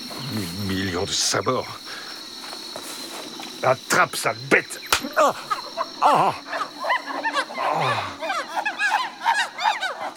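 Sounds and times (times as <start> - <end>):
speech: 0.3 - 2.0, 3.6 - 6.6
chorus of howler monkeys howling: 5.1 - 10.1.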